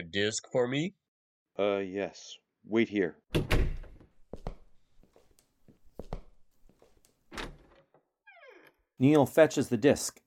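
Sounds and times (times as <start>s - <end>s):
speech: 0.1s - 1.0s, 1.6s - 3.5s, 9.0s - 10.2s
door opening: 3.3s - 4.2s, 7.3s - 8.9s
wooden door thunks: 3.3s - 4.6s.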